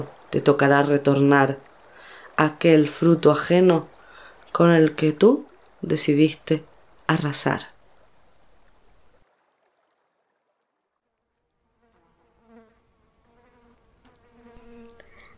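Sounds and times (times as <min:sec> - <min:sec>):
speech: 0:00.0 - 0:01.7, 0:02.4 - 0:03.9, 0:04.6 - 0:07.7
wasp buzzing: 0:11.7 - 0:15.3.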